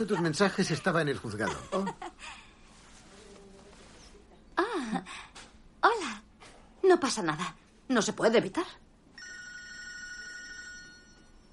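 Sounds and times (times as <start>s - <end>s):
laughter: 0.0s - 2.3s
speech: 0.0s - 2.4s, 6.9s - 8.8s
telephone ringing with bright electronic tone: 9.2s - 11.5s.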